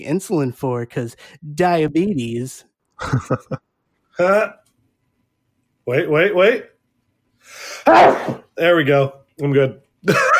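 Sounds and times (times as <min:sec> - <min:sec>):
speech: 0:00.0 - 0:04.6, 0:05.9 - 0:06.7, 0:07.4 - 0:10.3
loud explosive sneeze: 0:07.8 - 0:08.5.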